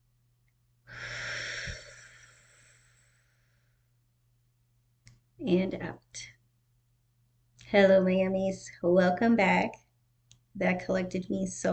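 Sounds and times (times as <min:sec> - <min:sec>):
slow deep breath drawn in: 0:00.9 - 0:03.7
speech: 0:05.4 - 0:06.4, 0:07.7 - 0:09.8, 0:10.6 - 0:11.7.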